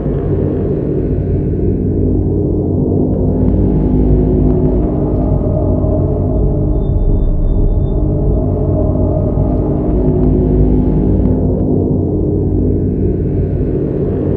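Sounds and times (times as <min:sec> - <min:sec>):
eerie ambience: 0:00.0 - 0:14.3.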